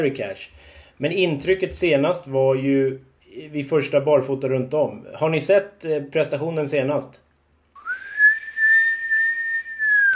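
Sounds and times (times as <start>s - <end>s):
speech: 0.0s - 7.2s
person whistling one long note: 7.8s - 10.1s.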